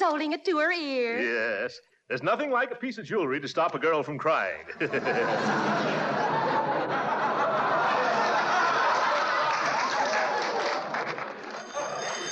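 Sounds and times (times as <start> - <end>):
speech: 0.1 - 7.0
busy room of chattering laughing voices: 4.7 - 12.2
telephone bell ringing: 11.5 - 12.2.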